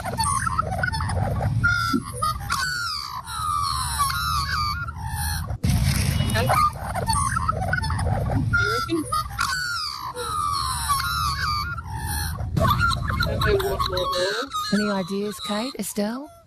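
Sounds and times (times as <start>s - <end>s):
Australian magpie warbling carol: 0.0s - 5.6s, 6.2s - 16.4s
speech: 15.0s - 16.4s.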